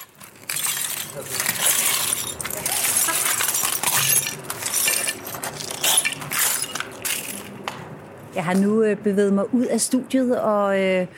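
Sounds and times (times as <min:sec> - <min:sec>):
footsteps crunching through discarded broken glass in a glass yard: 0:00.0 - 0:07.6
glass shards scattering and clinking: 0:00.0 - 0:07.6
speech: 0:01.2 - 0:01.6, 0:08.4 - 0:11.1.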